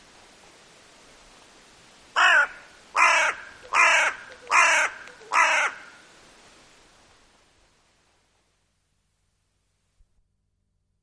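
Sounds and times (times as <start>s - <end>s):
hooded crow cawing: 2.2s - 6.1s.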